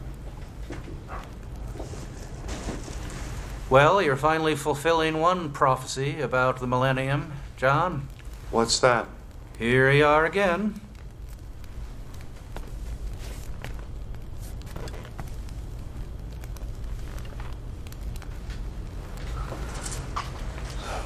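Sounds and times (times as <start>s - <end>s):
fire crackling in a fireplace: 0.0s - 21.0s
speech: 3.7s - 10.8s.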